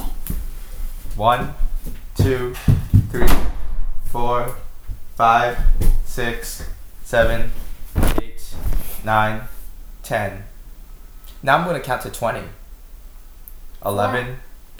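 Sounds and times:
speech: 1.2 - 3.5, 4.1 - 4.6, 5.2 - 7.6, 9.0 - 9.5, 10.1 - 10.5, 11.4 - 12.6, 13.8 - 14.5
door shutting: 2.2 - 9.5.

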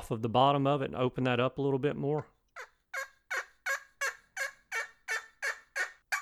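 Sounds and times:
speech: 0.1 - 2.7
turkey game call imitating a hen tree call: 2.6 - 6.2.

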